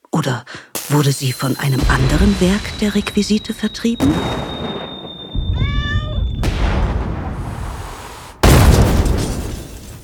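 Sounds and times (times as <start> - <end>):
speech: 0.2 - 4.6
staged explosive blast with rumbling roar: 1.8 - 9.7
bang with crackling noise: 1.8 - 10.0
cat-like yowl: 5.6 - 6.3.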